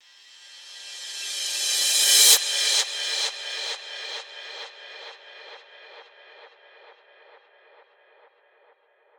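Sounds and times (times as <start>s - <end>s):
reverse crash cymbal: 0.1s - 4.4s.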